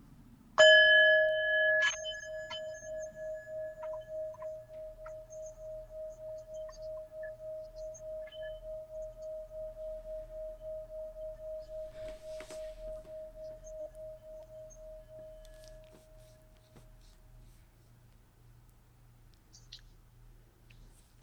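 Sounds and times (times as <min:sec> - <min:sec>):
sound bowl struck and ringing: 0:00.6 - 0:16.4.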